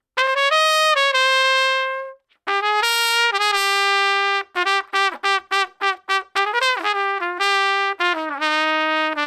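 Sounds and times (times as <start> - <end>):
trad jazz trumpet solo in F major: 0.0 - 9.2.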